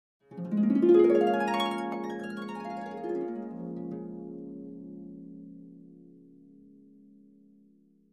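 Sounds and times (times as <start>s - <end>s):
harp glissando ascending and descending: 0.3s - 5.2s.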